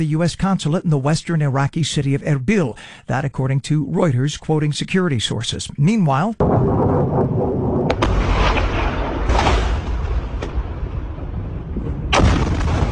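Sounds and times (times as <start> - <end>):
speech: 0.0 - 7.2
Iranian missile crashing and exploding at an air base in Jordan: 6.4 - 12.9
sharp cracking missile explosion blasts at an air base in Jordan: 6.4 - 12.9.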